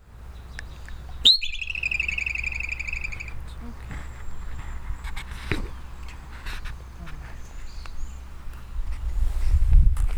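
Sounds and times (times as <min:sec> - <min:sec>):
low background hum: 0:00.0 - 0:09.2
groundhog whistle: 0:01.2 - 0:03.5.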